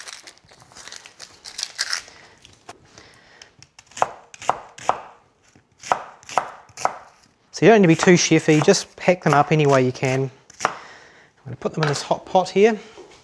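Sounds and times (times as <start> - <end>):
soft crinkly rustling and handling of onions: 0.0 - 2.8
knife chopping onions roughly: 3.8 - 5.2, 5.8 - 10.9
speech: 7.6 - 10.4, 11.6 - 12.9.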